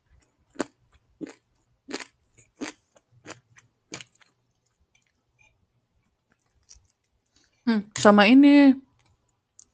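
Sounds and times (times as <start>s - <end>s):
crunchy chewing while eating: 0.1s - 5.5s, 6.2s - 7.6s
speech: 7.7s - 8.8s.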